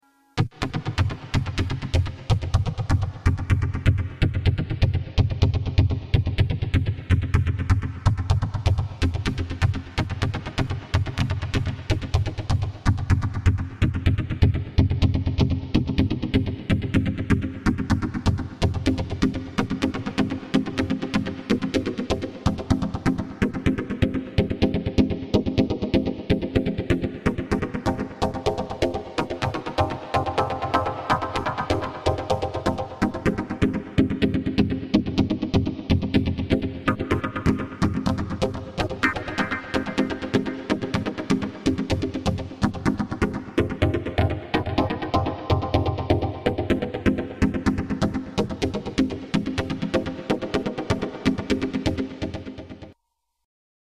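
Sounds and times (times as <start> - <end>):
Yamaha DX100 synthesizer: 0.0 - 53.0.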